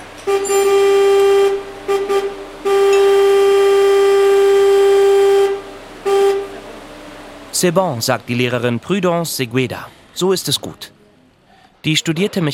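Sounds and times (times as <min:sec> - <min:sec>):
car horn honking after wiring circuit: 0:00.2 - 0:06.7
speech: 0:00.3 - 0:00.8, 0:07.6 - 0:11.0, 0:11.8 - 0:12.5.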